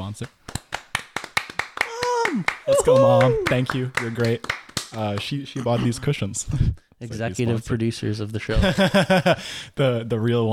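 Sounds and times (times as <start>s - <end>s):
speech: 0.1s - 0.4s, 2.4s - 10.5s
round of applause with crisp hand claps: 0.2s - 5.4s
person cheering: 1.8s - 4.2s
laughter: 8.5s - 9.4s.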